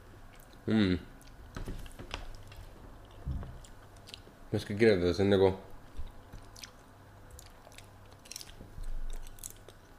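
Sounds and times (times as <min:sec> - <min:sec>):
person chewing and eating shrimp: 0:00.2 - 0:01.5, 0:03.0 - 0:04.4, 0:06.0 - 0:09.9
speech: 0:00.7 - 0:01.1, 0:04.5 - 0:05.7.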